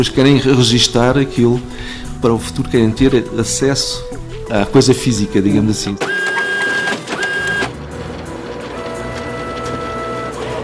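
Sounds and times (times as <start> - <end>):
speech: 0.0 - 6.4
printer and photocopier printing pages: 6.0 - 10.6.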